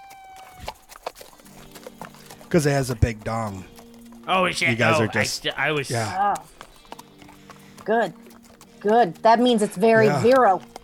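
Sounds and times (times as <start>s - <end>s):
soft horse hoof thuds: 0.0s - 10.8s
horse snorting: 0.2s - 10.8s
speech: 2.5s - 6.6s, 7.9s - 8.2s, 8.8s - 10.7s.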